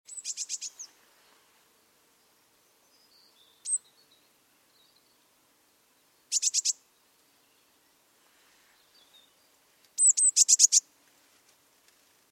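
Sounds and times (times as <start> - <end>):
Eurasian blue tit giving very high note bursts: 0.1 - 0.9, 3.6 - 3.9, 6.3 - 6.8, 10.0 - 10.8.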